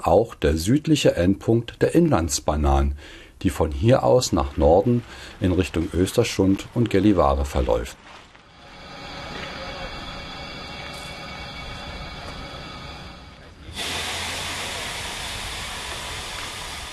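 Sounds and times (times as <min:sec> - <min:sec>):
speech: 0:00.0 - 0:08.2
railway cars rolling during train shunting: 0:03.7 - 0:16.9
hiss and rattle of moving train: 0:04.5 - 0:16.9
faint whine: 0:07.3 - 0:16.9.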